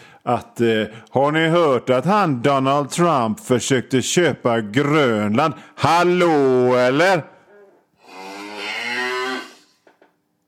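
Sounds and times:
speech: 0:00.2 - 0:07.3
cow mooing: 0:08.0 - 0:09.8.

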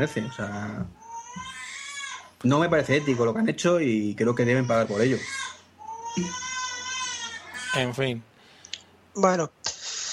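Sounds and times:
speech: 0:00.0 - 0:01.5, 0:02.4 - 0:06.5, 0:07.7 - 0:08.3, 0:09.2 - 0:09.7
baby crying: 0:00.0 - 0:03.5, 0:04.5 - 0:07.9
low hum: 0:00.0 - 0:10.1.

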